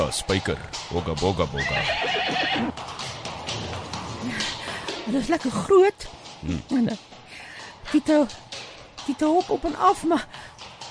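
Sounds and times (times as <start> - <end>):
speech: 0.0 - 3.0, 4.2 - 4.5, 5.1 - 7.1, 7.9 - 10.4
outdoor noise: 0.0 - 10.9
horse whinnying: 1.5 - 2.8.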